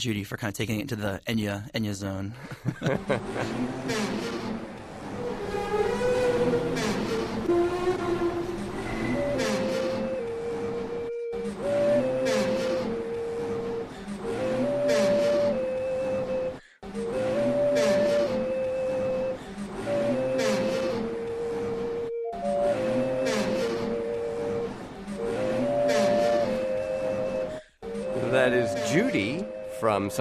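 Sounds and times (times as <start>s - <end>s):
speech: 0.0s - 4.7s, 30.1s - 30.2s
laughter: 2.4s - 3.8s
squeaky metro escalator groaning and squealing: 2.8s - 30.2s
recorder-like notes playing a slow melody: 7.5s - 30.2s.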